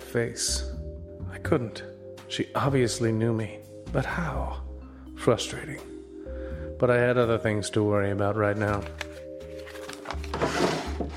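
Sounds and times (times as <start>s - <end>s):
speech: 0.1s - 0.8s, 1.4s - 4.6s, 5.2s - 5.9s, 6.8s - 9.1s
office desk drawer sliding open and shut with a wooden scrape: 10.0s - 11.1s.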